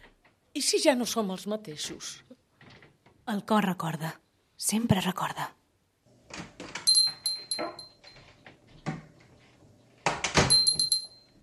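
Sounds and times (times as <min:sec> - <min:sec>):
speech: 0:00.6 - 0:02.4, 0:03.3 - 0:05.6
door opening: 0:06.2 - 0:11.1
bright metallic ringing of a swinging door: 0:06.9 - 0:08.1, 0:10.5 - 0:11.3.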